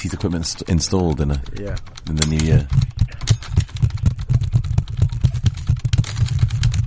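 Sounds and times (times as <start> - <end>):
speech: 0.0 - 3.0
low constant hum: 0.0 - 6.8
typing on an old-style computer keyboard: 0.0 - 6.8.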